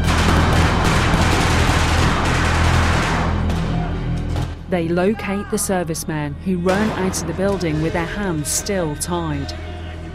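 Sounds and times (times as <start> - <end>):
gunfire from special forces storming a building at night: 0.1 - 3.7
speech: 4.7 - 9.7.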